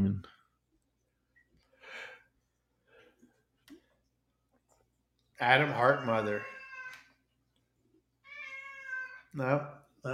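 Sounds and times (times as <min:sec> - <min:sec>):
speech: 0:00.1 - 0:00.4, 0:05.4 - 0:06.6, 0:09.3 - 0:10.1
cat meowing insistently and distressed: 0:05.6 - 0:07.1, 0:08.2 - 0:09.3.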